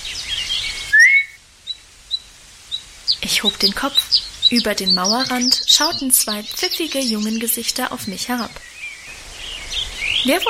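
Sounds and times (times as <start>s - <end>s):
faint brief chirping notes: 0.0s - 10.4s
soft hiss: 0.0s - 10.4s
short sharp upward-sweeping whistle: 0.9s - 1.4s
speech: 3.3s - 8.7s, 10.2s - 10.4s.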